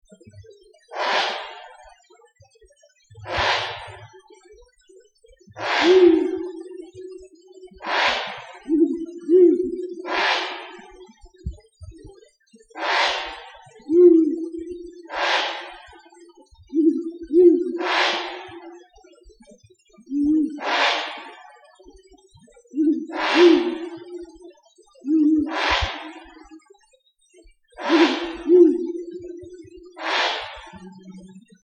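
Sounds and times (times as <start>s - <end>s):
male Ural owl territorial call: 0.9s - 1.9s, 3.2s - 4.1s, 5.6s - 11.6s, 12.8s - 16.1s, 16.7s - 18.9s, 20.0s - 21.6s, 22.7s - 26.5s, 27.8s - 31.4s
female Ural owl call: 1.0s - 1.8s, 3.3s - 4.0s, 5.6s - 7.2s, 7.8s - 11.0s, 12.8s - 16.0s, 16.7s - 18.8s, 20.1s - 21.5s, 22.8s - 24.4s, 25.1s - 26.4s, 27.8s - 31.4s.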